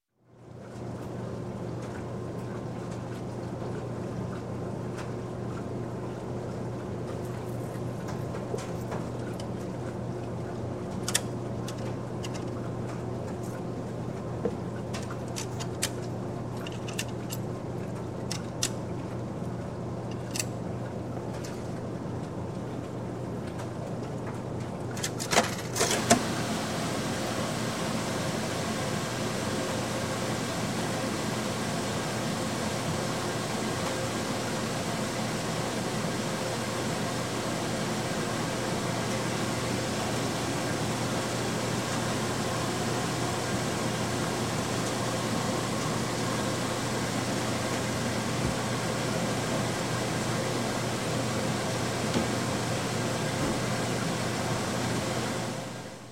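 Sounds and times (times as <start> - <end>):
laundromat washing machine running: 0.2 - 56.0
water in laundromat washer: 0.2 - 56.0
coins inserted into laundromat washer: 15.0 - 17.5.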